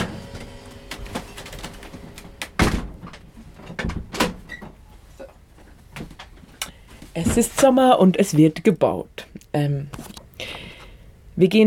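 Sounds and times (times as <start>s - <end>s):
door swung shut with a solid thump: 0.0s - 4.7s
speech: 7.2s - 10.1s, 11.4s - 11.6s.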